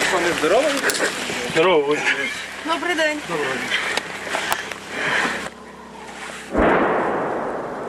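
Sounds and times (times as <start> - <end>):
speech: 0.1 - 3.9
artillery cannon fire booming outdoors: 6.5 - 7.8.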